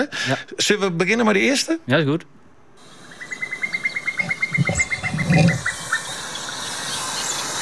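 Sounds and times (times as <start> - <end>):
speech: 0.0 - 2.4, 4.6 - 5.7
marsh or heath bird giving bubbling notes: 2.9 - 7.6.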